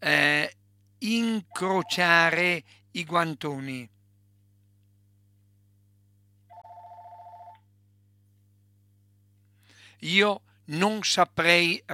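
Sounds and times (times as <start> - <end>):
speech: 1.0 - 4.0, 10.0 - 11.9
electronic telephone ringing with a trilling tone: 6.5 - 7.6.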